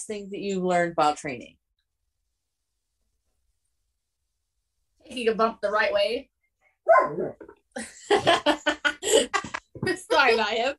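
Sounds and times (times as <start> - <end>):
speech: 0.0 - 1.6, 5.1 - 6.3, 6.9 - 10.7
dog yelping and barking: 6.8 - 7.4
laughter: 7.8 - 9.7.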